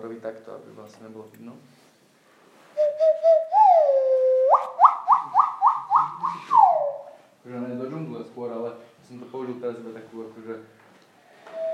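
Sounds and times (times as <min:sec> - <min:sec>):
speech: 0:00.0 - 0:01.9, 0:07.4 - 0:10.8
indigenous nose whistle imitating owl hoots: 0:02.8 - 0:07.2, 0:11.4 - 0:11.7.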